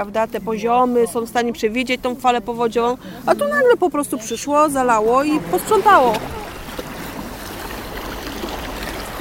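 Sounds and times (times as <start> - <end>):
speech: 0.0 - 6.4
fast-flowing mountain river with waves: 3.0 - 9.1.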